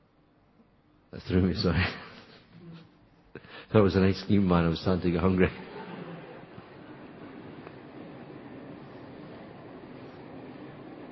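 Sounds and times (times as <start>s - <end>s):
speech: 1.2s - 2.0s, 3.7s - 5.7s
train rumbling past: 3.8s - 11.1s.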